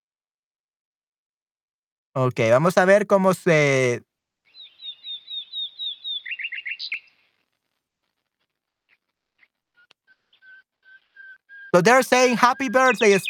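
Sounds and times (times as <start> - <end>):
speech: 2.2 - 4.1, 11.7 - 13.2
nightingales singing: 4.5 - 7.2, 10.3 - 13.2.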